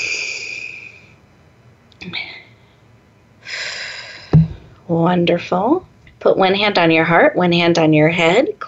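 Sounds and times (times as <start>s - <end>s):
deep breath in through nose and out through mouth: 0.0s - 1.2s, 2.0s - 4.8s
speech: 2.0s - 2.3s, 4.9s - 8.6s.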